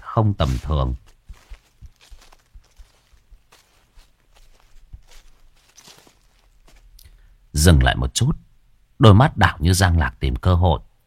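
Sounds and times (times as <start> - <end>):
soft cautious footsteps following behind: 0.0 - 7.3
speech: 0.2 - 1.1, 7.6 - 10.9.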